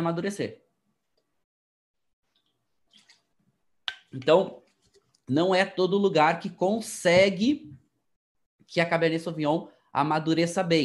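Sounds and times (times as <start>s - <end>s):
speech: 0.0s - 0.6s, 4.1s - 4.6s, 5.3s - 7.8s, 8.7s - 10.8s
person sipping a drink with mouth clicks: 2.3s - 3.3s.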